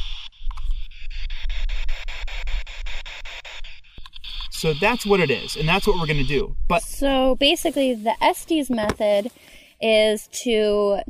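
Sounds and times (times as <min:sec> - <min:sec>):
spirit box sweeping through FM stations with pulsing radio static: 0:00.7 - 0:09.1
speech: 0:04.6 - 0:11.0.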